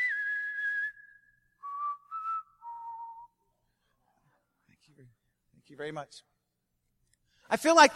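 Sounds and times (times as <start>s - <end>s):
person whistling a slow dramatic Wild West standoff-style tune: 0.0s - 3.6s
speech: 5.7s - 6.3s, 7.5s - 7.9s.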